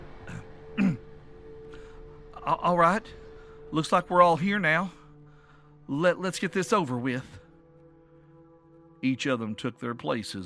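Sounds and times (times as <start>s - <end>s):
faint steady hum: 0.0s - 9.0s
breathy sound: 0.2s - 2.3s, 3.1s - 3.8s, 4.9s - 5.9s
woman clearing her throat: 0.3s - 1.1s
speech: 2.5s - 5.0s, 5.9s - 7.4s, 9.0s - 10.4s.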